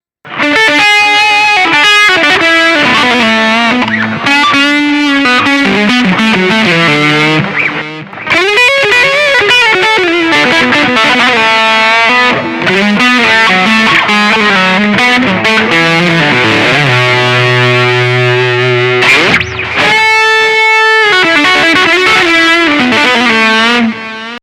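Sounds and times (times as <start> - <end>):
fully distorted lead guitar: 0.3 - 24.4.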